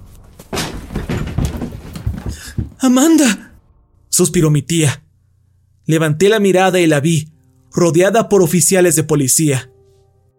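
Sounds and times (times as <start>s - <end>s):
person falling onto kitchen floor: 0.3s - 2.8s
back door banging open: 0.5s - 2.9s
speech: 2.8s - 3.5s, 4.2s - 5.0s, 5.9s - 9.7s.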